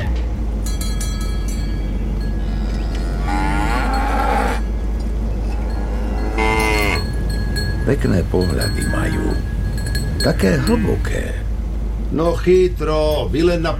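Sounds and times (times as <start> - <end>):
faint clanking: 0.0 - 13.7
steady low rumble: 0.0 - 13.7
cows mooing: 2.2 - 7.8
speech: 7.9 - 9.6, 10.2 - 11.4, 12.1 - 13.7.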